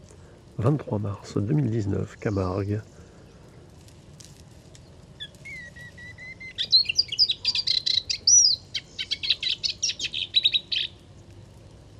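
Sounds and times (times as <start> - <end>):
soft low hum: 0.0 - 11.9
speech: 0.6 - 3.0
moustached warbler singing: 1.7 - 3.7, 4.8 - 11.0.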